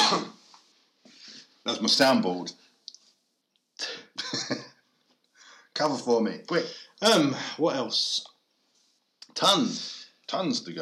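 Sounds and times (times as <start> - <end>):
harsh coughs: 0.0 - 0.4
speech: 1.6 - 2.7, 5.8 - 8.3, 9.4 - 10.7.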